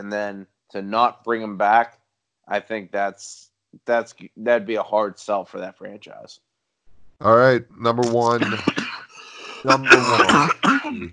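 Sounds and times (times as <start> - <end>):
laughter: 0.0 - 1.8, 2.5 - 6.2, 7.3 - 11.1
speech: 0.0 - 6.5, 7.2 - 8.8, 9.6 - 11.1
harsh raspy coughing: 8.1 - 11.1.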